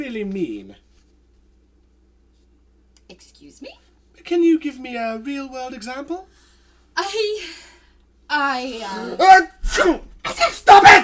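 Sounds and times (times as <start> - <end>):
speech: 0.0 - 0.8, 3.2 - 6.4, 7.0 - 7.7, 8.3 - 11.0
loud sneezes with breathy build-up: 9.5 - 11.0.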